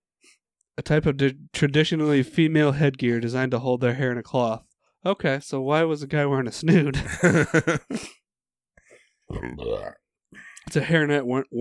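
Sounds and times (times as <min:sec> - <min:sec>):
speech: 0:00.8 - 0:08.2, 0:09.3 - 0:11.5
laughter: 0:06.7 - 0:08.1
two people burping at once: 0:09.3 - 0:10.0.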